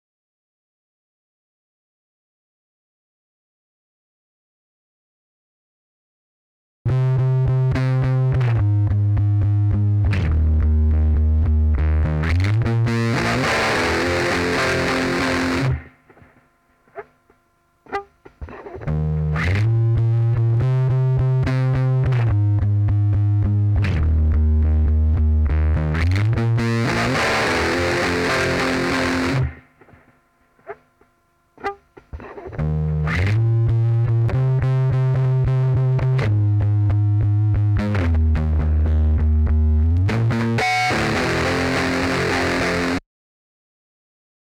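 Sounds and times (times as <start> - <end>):
bass guitar: 6.9 - 15.9, 17.9 - 29.6, 32.2 - 43.0.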